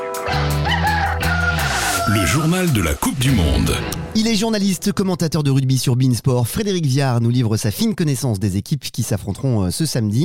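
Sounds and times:
rooster crowing: 0.3 - 2.5
speech: 2.1 - 10.2.

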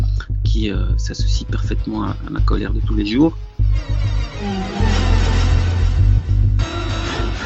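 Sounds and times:
distorted saturated droning bass music: 0.0 - 7.4
speech: 0.5 - 4.8
harsh noisy fuzz: 1.6 - 7.4.

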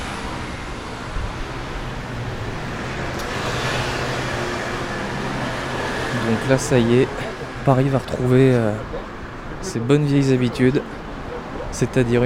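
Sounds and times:
dense traffic roar on a city boulevard in Paris: 0.0 - 12.2
speech: 6.3 - 11.0, 11.8 - 12.2.

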